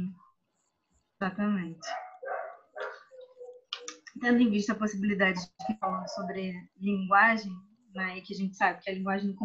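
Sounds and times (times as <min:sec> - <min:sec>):
speech: 0:01.2 - 0:02.0, 0:04.2 - 0:09.4
dog barking while walked past by a neighbour: 0:01.8 - 0:03.6, 0:05.9 - 0:06.4.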